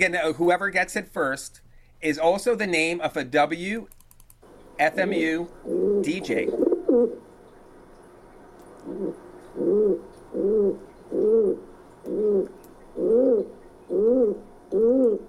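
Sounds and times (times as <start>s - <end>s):
speech: 0.0s - 4.0s, 4.8s - 7.3s, 8.8s - 15.2s
pigeon cooing: 5.5s - 7.2s, 8.8s - 15.2s.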